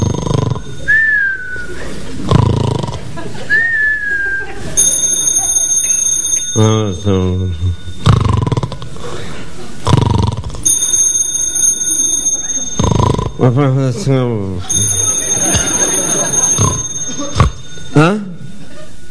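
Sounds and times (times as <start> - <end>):
laughter: 0.7 - 5.0, 9.0 - 9.9, 13.4 - 19.0
telephone ringing: 4.6 - 9.2, 10.6 - 13.7, 14.6 - 19.0
speech: 6.6 - 7.8, 13.4 - 14.8.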